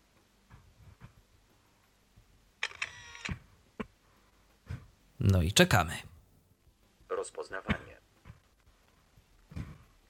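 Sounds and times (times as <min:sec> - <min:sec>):
reading device camera mechanical clicks photographing a leaflet: 0:02.6 - 0:03.4
reading device camera brief whir: 0:02.6 - 0:03.5
speech: 0:05.2 - 0:06.1.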